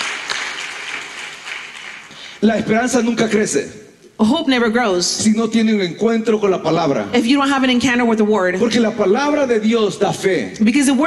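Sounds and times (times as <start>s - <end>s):
crowd applauding: 0.0s - 2.4s
speech: 2.4s - 11.0s.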